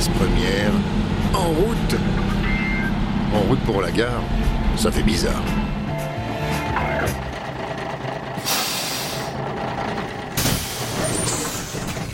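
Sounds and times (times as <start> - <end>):
bus engine idling in the rain: 0.0 - 12.1
speech: 3.4 - 5.8
bus air brakes hissing: 8.4 - 9.4, 10.4 - 12.0.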